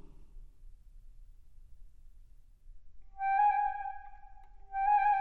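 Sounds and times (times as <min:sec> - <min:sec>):
orchestral flute excerpts: 0:03.2 - 0:05.1.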